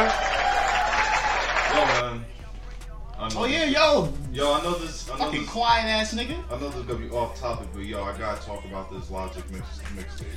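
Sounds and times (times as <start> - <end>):
crowd cheering and applause: 0.0 - 2.1
speech: 3.4 - 10.3.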